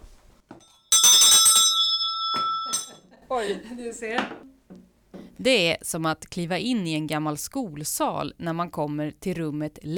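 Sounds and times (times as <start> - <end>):
school break hand bell rung on a desk: 0.6 - 3.0
speech: 3.3 - 4.8, 5.4 - 9.9.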